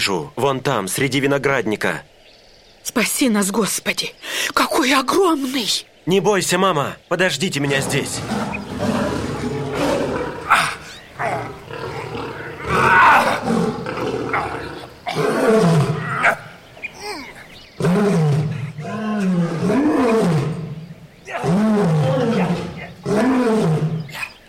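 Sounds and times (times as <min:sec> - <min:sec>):
speech: 0:00.0 - 0:02.1, 0:02.8 - 0:09.0
lion roaring: 0:07.5 - 0:16.5, 0:17.8 - 0:24.3.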